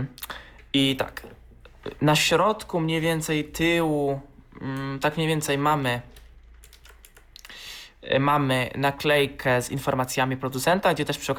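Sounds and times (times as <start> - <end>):
speech: 0.0 - 6.2, 8.1 - 11.3
mechanical keyboard clattering as it is shifted: 6.0 - 7.3
mechanical keyboard with plastic case and metal plate clicking and tapping: 6.1 - 7.4.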